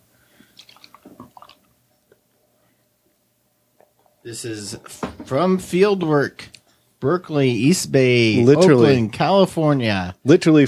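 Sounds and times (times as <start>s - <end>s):
double IPA beer pouring into a glass: 0.6s - 1.7s
speech: 4.2s - 10.6s.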